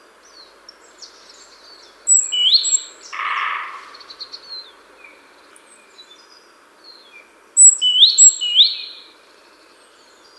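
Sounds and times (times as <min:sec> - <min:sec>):
Parus major great tit calling: 0:01.0 - 0:04.7, 0:07.6 - 0:09.1.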